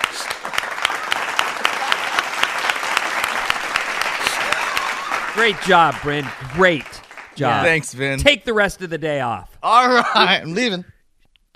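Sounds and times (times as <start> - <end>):
small group hand clapping: 0.0 - 8.2
speech: 5.4 - 10.9
laughter: 9.7 - 10.8.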